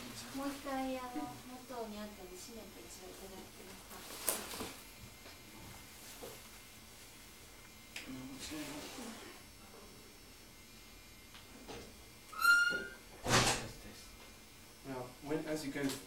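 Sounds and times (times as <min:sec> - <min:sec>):
speech: 0:00.4 - 0:04.8, 0:08.1 - 0:09.3, 0:15.5 - 0:16.0
door creaking: 0:12.3 - 0:13.8
door shutting with a solid thud: 0:12.7 - 0:13.7.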